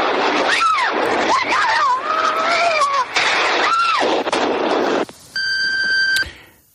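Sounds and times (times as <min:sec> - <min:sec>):
explosions: 0:00.0 - 0:05.1
sustained electronic beep: 0:05.4 - 0:06.3.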